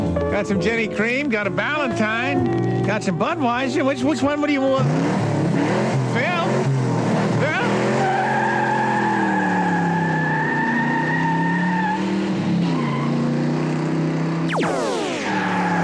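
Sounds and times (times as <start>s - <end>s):
speech: 0.4s - 5.3s
car engine droning: 3.2s - 15.8s
car tires squealing as the car shifts into second gear: 4.8s - 13.6s, 15.2s - 15.8s.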